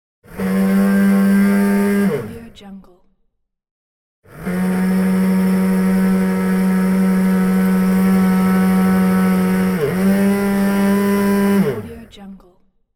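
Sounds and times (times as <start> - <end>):
kitchen mixer: 0.3 - 2.2, 4.3 - 12.0.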